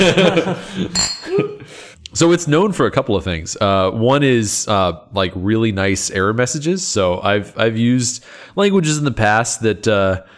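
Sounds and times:
speech: 0.0 - 1.5, 2.1 - 10.3
people chuckling: 0.0 - 1.7
glasses clinking in a toast: 0.8 - 1.6.

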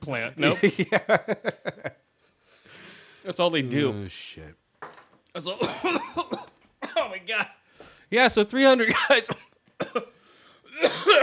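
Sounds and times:
speech: 0.0 - 1.9, 3.3 - 4.6, 5.4 - 10.1
laughter: 0.4 - 2.0
person coughing into the microphone: 5.6 - 7.0, 8.8 - 10.1, 10.7 - 11.2.

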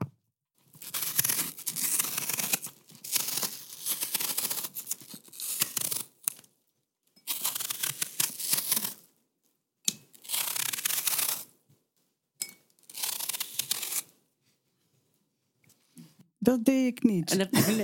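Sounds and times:
knife scraping while peeling an apple: 0.6 - 6.5, 7.2 - 9.1, 9.9 - 11.6, 12.7 - 14.2
speech: 16.5 - 17.8
laughter: 17.3 - 17.8.

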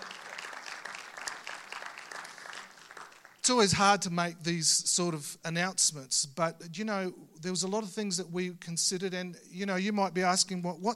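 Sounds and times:
room full of people clapping: 0.0 - 3.6
speech: 3.5 - 10.9.

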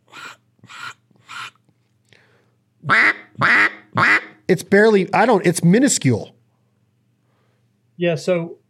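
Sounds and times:
duck quacks blown on a duck call: 0.0 - 1.6, 2.8 - 4.4
speech: 4.5 - 6.4, 8.0 - 8.6.

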